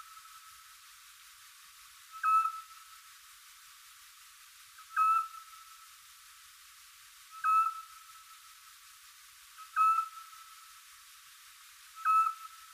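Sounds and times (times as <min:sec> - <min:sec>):
faint steady tone and hiss: 0:00.0 - 0:12.7
Eurasian scops owl giving a clear whistled note: 0:07.3 - 0:07.8, 0:12.0 - 0:12.5.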